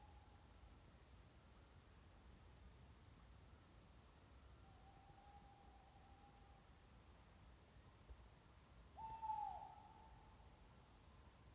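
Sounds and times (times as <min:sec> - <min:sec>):
faint background hiss: 0:00.0 - 0:11.5
Tawny owl Strix aluco hooting in a castle park: 0:09.0 - 0:10.2.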